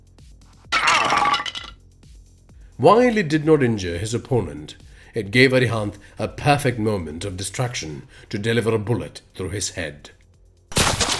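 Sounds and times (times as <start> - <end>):
rusty light fixture falling from ceiling and crashing: 0.7 - 1.7
speech: 2.8 - 10.2
metallic clattering and breaking debris: 10.8 - 11.1.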